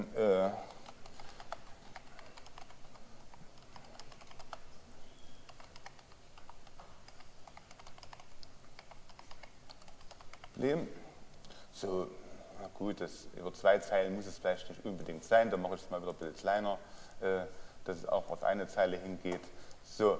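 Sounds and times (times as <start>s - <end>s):
typing on a computer keyboard entering text into a slide outline: 0.7s - 4.7s, 5.4s - 10.6s
speech: 10.6s - 11.0s, 11.8s - 12.2s, 12.8s - 20.1s.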